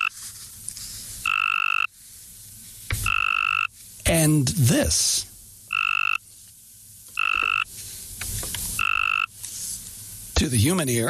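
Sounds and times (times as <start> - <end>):
weaker male Cope's gray tree frog mating call trills: 0.0 - 0.2, 1.2 - 2.0, 3.0 - 6.3, 7.1 - 7.8, 8.7 - 9.4
speech: 4.1 - 5.3, 10.4 - 11.0.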